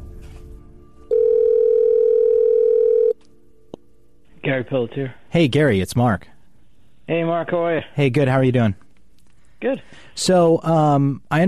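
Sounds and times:
faint noise: 0.8 - 11.4
telephone dial tone: 1.1 - 3.2
speech: 4.5 - 6.3, 7.1 - 8.8, 9.6 - 11.4.

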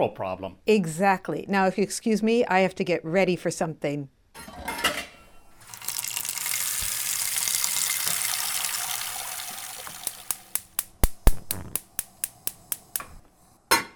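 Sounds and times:
speech: 0.0 - 4.6
tap water pouring into a cooking pot filled to boil for pasta: 5.6 - 10.9, 11.6 - 13.0
sharp clicks: 9.8 - 13.2.

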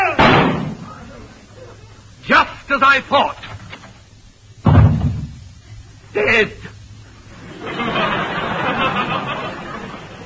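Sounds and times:
door slamming shut: 0.2 - 0.8, 4.6 - 5.4
speech: 2.8 - 3.4, 6.2 - 6.6
laughter: 7.3 - 10.2.

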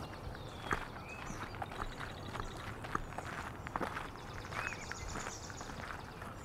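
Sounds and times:
common yellowthroat, yellow warbler, gray catbird, red-winged blackbird and indigo bunting singing: 0.0 - 6.4
footsteps crunching along a marsh path: 0.0 - 6.4.

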